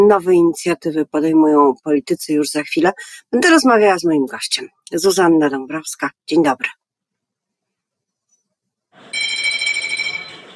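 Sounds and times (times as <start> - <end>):
speech: 0.0 - 6.8
bell ringing with a bright metallic trill: 9.1 - 10.5.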